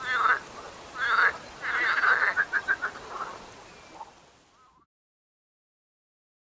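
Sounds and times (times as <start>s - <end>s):
marsh frog croaking and calling: 0.0s - 4.8s.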